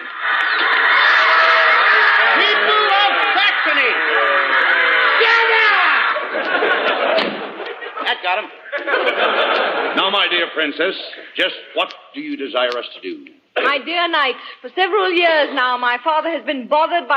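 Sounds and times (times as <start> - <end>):
crowd of people shouting: 0.0 - 6.4
laughter: 0.0 - 11.8
speech: 10.1 - 17.1.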